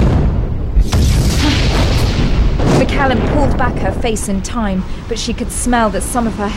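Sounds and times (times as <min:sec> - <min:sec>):
deep thud of a grenade dropping into a volcano: 0:00.0 - 0:04.1
volcano rumbling and roaring after a grenade drops in: 0:00.0 - 0:06.0
speech: 0:03.0 - 0:06.5.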